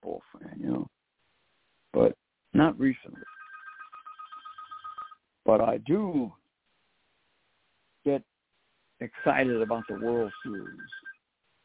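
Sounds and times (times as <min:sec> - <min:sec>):
quiet hiss: 0:00.0 - 0:03.2, 0:05.3 - 0:11.6
telephone line ringing with a bright electronic trill: 0:03.2 - 0:05.2, 0:09.1 - 0:11.2
speech: 0:05.5 - 0:06.4, 0:09.2 - 0:11.0.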